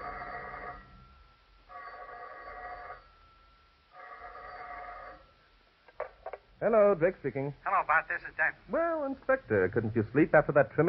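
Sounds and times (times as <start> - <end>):
telephone bell ringing: 0.0 - 5.4
speech: 6.6 - 10.8.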